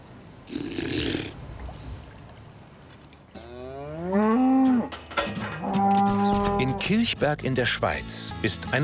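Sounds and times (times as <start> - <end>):
cow mooing: 3.4 - 5.0, 5.6 - 7.0
speech: 6.7 - 8.8.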